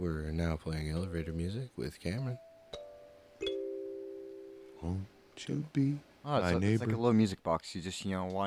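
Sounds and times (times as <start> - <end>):
speech: 0.0 - 2.5, 4.8 - 8.4
two-note ding-dong chime on small metal instrument over wooden block: 2.2 - 4.8.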